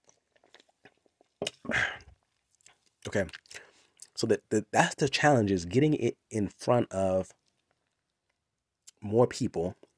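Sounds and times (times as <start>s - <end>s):
noisy slurp of a drink: 0.0s - 4.2s
person swallowing a drink: 0.4s - 2.3s
mouth clicks: 0.4s - 4.2s, 8.8s - 9.0s
speech: 3.1s - 3.4s, 4.2s - 7.4s, 9.0s - 9.8s.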